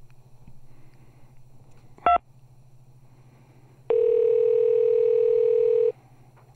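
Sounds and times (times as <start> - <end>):
low steady hum: 0.0 - 6.5
sustained single-pitch phone tone: 3.9 - 5.9.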